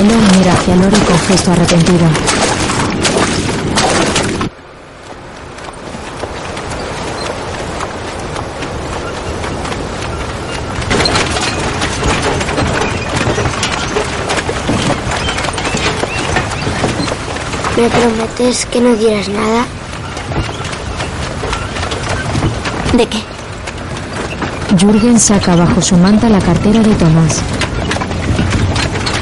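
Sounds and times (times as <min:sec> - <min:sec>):
continuous rolling, rushing noise of a carriage along the shore: 0:00.0 - 0:29.2
mule hooves clopping while drawing a carriage along the shore: 0:00.0 - 0:29.2
speech: 0:00.4 - 0:02.4, 0:17.8 - 0:19.8, 0:22.9 - 0:23.3, 0:24.7 - 0:27.6.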